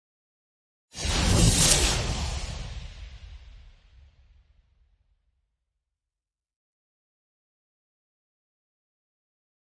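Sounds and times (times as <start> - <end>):
meteor storm: 1.0 - 4.9.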